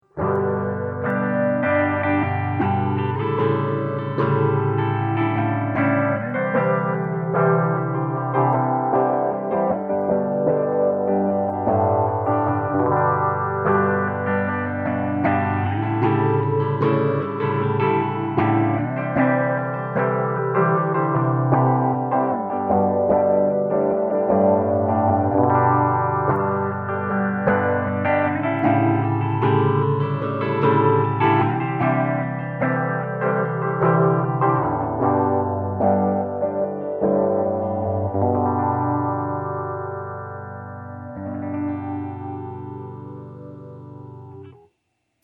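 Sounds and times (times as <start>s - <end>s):
slow eight stage stereo phase shifter on guitar: 0.0s - 44.7s.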